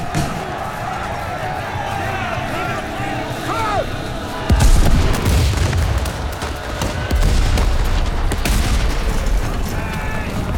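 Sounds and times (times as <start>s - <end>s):
crowd murmuring: 0.0s - 10.5s
indistinct voices: 0.0s - 10.5s
deep rumbling cannon blasts in battle: 4.5s - 10.5s
scattered gunfire in battle: 4.5s - 10.5s.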